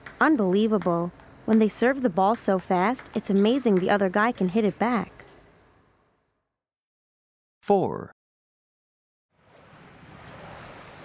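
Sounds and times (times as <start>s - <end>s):
speech: 0.2s - 5.1s, 7.7s - 8.2s
racing boat speeding through ocean waves: 9.5s - 11.0s.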